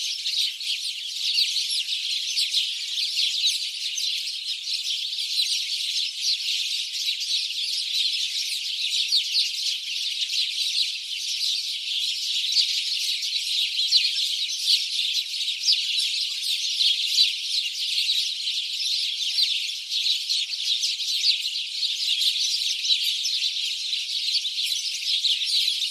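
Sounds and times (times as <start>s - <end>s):
House sparrow Passer domesticus flock chirping: 0.0s - 25.8s.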